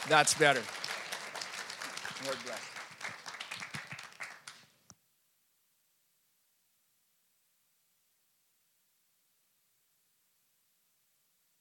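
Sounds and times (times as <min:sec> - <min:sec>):
speech: 0:00.0 - 0:00.8, 0:02.2 - 0:02.8
light scattered applause from a congregation: 0:00.0 - 0:04.8.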